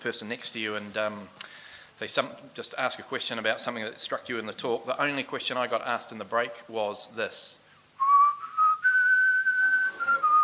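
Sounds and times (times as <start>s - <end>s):
speech: 0.0s - 7.6s
person whistling out the side of the mouth: 8.0s - 10.4s.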